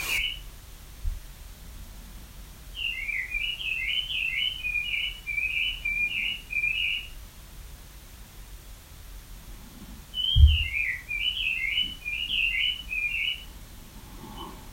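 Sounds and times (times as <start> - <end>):
bird chirping in quick twittering notes: 0.0 - 0.5, 2.7 - 7.2, 10.1 - 13.5.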